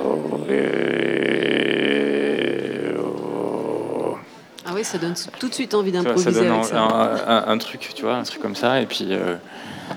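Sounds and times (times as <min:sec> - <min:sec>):
man imitating a bear's growl as a primal cry: 0:00.0 - 0:04.2
speech: 0:00.5 - 0:01.1, 0:04.8 - 0:09.8.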